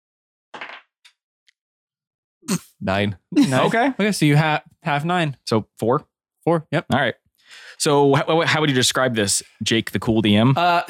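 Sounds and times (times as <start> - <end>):
heavy dice rolling on a table in a tabletop role-playing game: 0.6 - 0.9
speech: 2.5 - 10.8.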